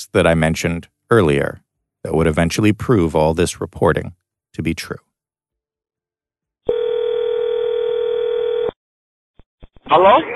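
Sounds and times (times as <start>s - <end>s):
speech: 0.0s - 5.1s, 9.9s - 10.3s
telephone ringing tone: 6.7s - 8.8s.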